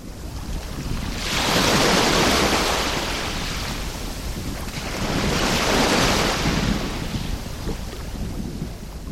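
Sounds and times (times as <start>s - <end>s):
ocean waves breaking on Kuramo Beach in Lagos Nigeria: 0.0s - 9.0s.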